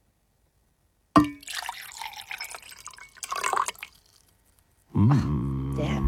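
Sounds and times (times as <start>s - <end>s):
liquid pouring into a container: 1.2s - 4.6s
person talking: 5.0s - 6.0s.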